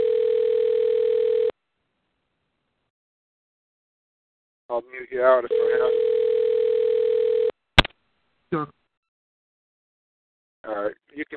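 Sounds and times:
telephone ringing with one steady electronic tone: 0.0s - 1.5s, 5.5s - 7.5s
speech: 4.8s - 6.2s, 8.5s - 8.8s.

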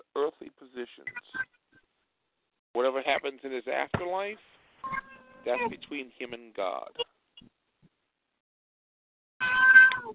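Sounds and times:
speech: 0.2s - 1.4s, 2.8s - 7.1s
cat meowing: 9.4s - 10.1s.

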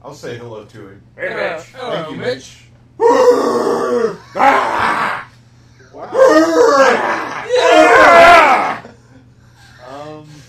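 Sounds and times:
speech: 0.0s - 4.8s
person screaming: 3.0s - 5.3s, 6.0s - 8.9s.

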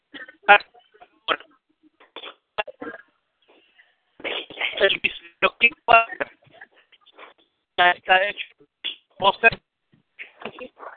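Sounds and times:
thin narrowband voice on a breaking-up phone call: 0.2s - 3.0s, 4.2s - 6.8s, 7.8s - 9.6s
speech: 0.5s - 0.7s.

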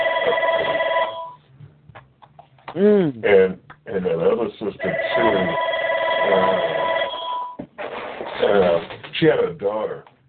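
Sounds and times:
telephone bell ringing with a metallic trill: 0.0s - 1.4s, 4.8s - 7.6s
speech: 2.8s - 6.9s, 8.4s - 10.1s.

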